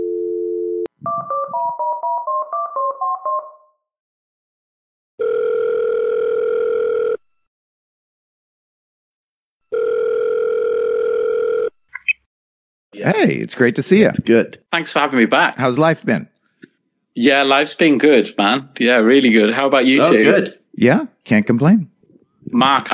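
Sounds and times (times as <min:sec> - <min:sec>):
telephone dial tone: 0:00.0 - 0:03.6, 0:05.2 - 0:07.2, 0:09.7 - 0:11.8
speech: 0:13.2 - 0:16.3, 0:17.2 - 0:21.9, 0:22.5 - 0:22.9.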